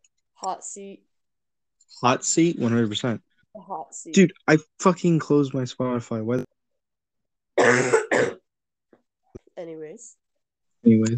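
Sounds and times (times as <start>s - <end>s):
speech: 0.4s - 1.1s, 1.9s - 6.5s, 9.6s - 10.2s, 10.8s - 11.1s
person clearing throat: 7.6s - 8.4s
person recovering from an illness coughing: 7.6s - 8.4s.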